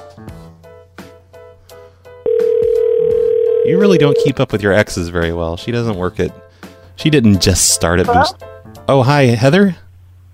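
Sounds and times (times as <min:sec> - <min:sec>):
phone call short ringing tones: 0:02.3 - 0:04.4
speech: 0:03.7 - 0:06.4, 0:07.0 - 0:09.8.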